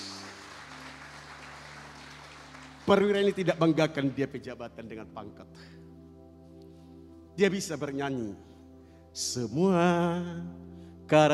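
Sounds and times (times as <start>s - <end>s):
audience applause: 0.0s - 3.5s
speech: 2.9s - 5.8s, 7.4s - 8.5s, 9.2s - 11.3s.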